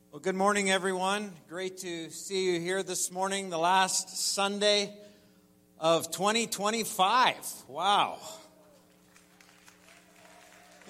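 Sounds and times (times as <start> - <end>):
speech: 0.2 - 5.1, 5.8 - 8.4
church audience cheering and clapping in a large room: 8.6 - 10.8.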